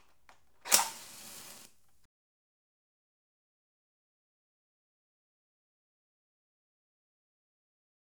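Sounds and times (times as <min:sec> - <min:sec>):
household match being struck: 0:00.6 - 0:02.0.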